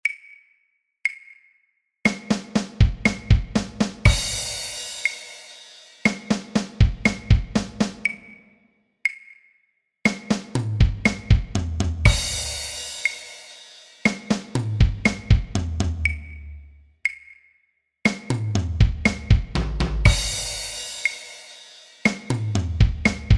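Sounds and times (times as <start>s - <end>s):
simple slow drum fills: 2.1s - 8.1s, 10.1s - 16.0s, 18.1s - 23.3s.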